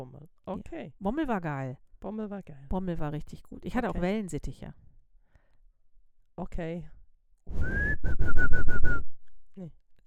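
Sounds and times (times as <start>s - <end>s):
speech: 0.0s - 4.8s, 6.4s - 9.8s
person whistling to call a dog: 7.5s - 9.2s.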